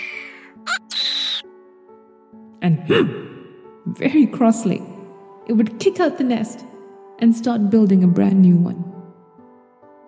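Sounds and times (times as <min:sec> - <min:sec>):
harsh shrill bird screech: 0:00.6 - 0:01.4
speech: 0:02.6 - 0:04.9, 0:05.5 - 0:08.9.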